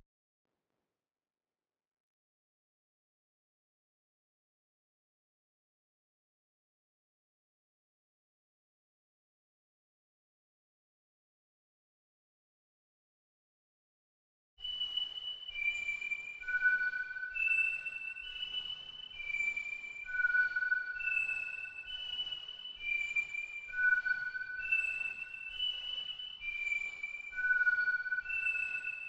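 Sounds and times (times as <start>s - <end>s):
whistle melody loop in B minor for trap: 14.6s - 29.0s.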